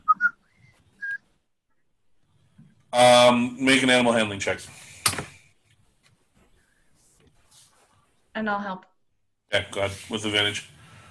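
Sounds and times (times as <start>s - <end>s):
person whistling out a window: 0.0s - 1.3s
speech: 3.0s - 4.8s, 8.4s - 8.9s, 9.5s - 10.8s.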